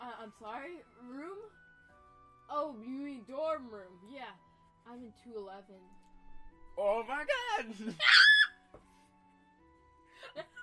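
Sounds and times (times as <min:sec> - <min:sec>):
speech: 0:00.2 - 0:01.6, 0:02.5 - 0:06.0, 0:06.8 - 0:08.4
high-pitched scream: 0:08.0 - 0:08.5.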